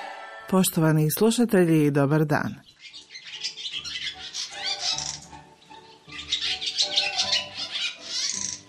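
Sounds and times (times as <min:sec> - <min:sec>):
speech: 0:00.5 - 0:02.7
barn swallow twittering: 0:02.5 - 0:08.6.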